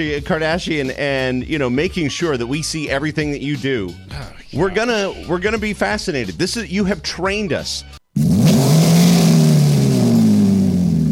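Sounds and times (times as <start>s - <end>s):
speech: 0.0s - 8.3s
hot rod engine revving: 8.2s - 11.1s.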